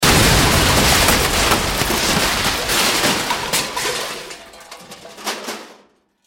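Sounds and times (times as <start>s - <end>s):
large explosion: 0.0s - 3.9s
large debris crashing: 0.0s - 5.9s.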